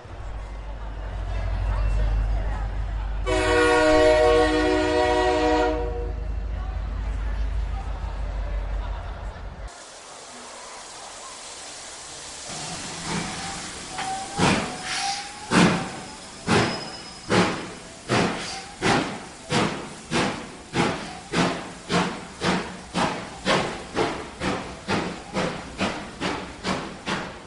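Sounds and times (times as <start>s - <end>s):
steam train deep idling rumble: 0.0s - 27.4s
steam train long shrill whistle blast: 3.3s - 6.2s.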